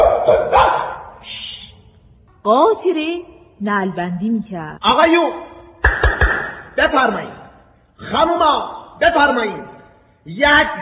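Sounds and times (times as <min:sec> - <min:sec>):
dog barking: 0:00.0 - 0:01.3
speech: 0:02.4 - 0:06.0, 0:06.8 - 0:07.4, 0:08.0 - 0:10.8.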